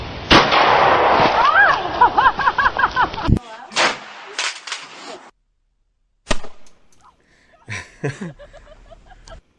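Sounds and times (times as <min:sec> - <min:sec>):
shotguns fired by young women: 0:00.3 - 0:01.4, 0:03.7 - 0:04.7, 0:06.2 - 0:06.7
laughter: 0:01.6 - 0:03.4, 0:07.6 - 0:09.4.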